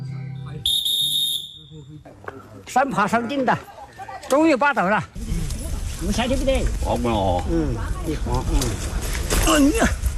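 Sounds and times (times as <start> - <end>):
whistle blown on a mountain climb: 0.6 - 1.8
speech: 1.9 - 5.2, 6.0 - 10.0.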